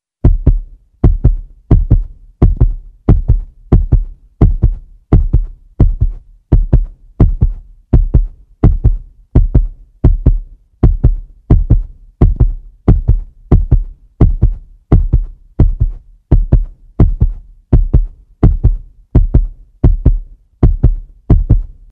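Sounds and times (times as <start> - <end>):
heartbeat: 0.2 - 21.9.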